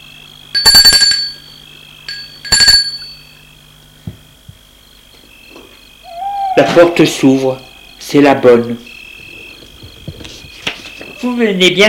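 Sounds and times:
low steady hum: 0.0 - 11.8
doorbell ringing at a house door: 0.6 - 3.3
speech: 6.6 - 8.9, 11.3 - 11.8.

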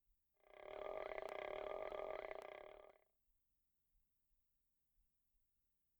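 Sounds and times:
hungry stomach growling: 0.5 - 2.9.

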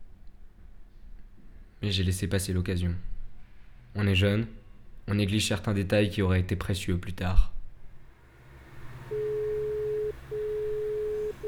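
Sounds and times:
faint low hum: 0.0 - 11.4
speech: 1.8 - 3.1, 4.0 - 7.6
telephone tone on an unanswered call: 9.1 - 11.4.

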